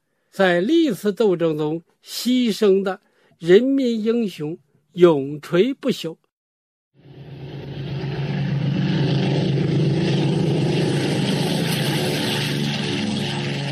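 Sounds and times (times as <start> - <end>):
speech: 0.3 - 6.2
parade formation of 17 propeller aircraft flying over Tiananmen Square: 7.0 - 13.7.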